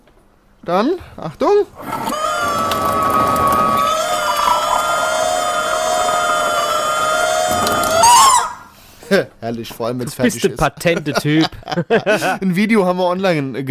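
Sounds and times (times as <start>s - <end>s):
speech: 0.6s - 2.2s, 9.1s - 13.7s
rubber chicken squawking driven by tap water: 1.8s - 8.7s
laughter: 2.0s - 8.2s, 10.0s - 12.4s.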